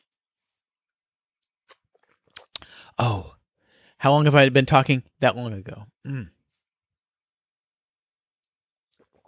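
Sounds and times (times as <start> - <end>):
person sipping a freshly brewed hot drink: 1.6 - 2.8, 8.9 - 9.2
speech: 4.0 - 6.4.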